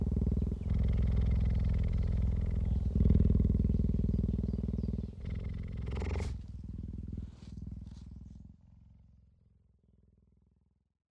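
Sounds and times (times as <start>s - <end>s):
adult cheetah purring: 0.0s - 8.7s.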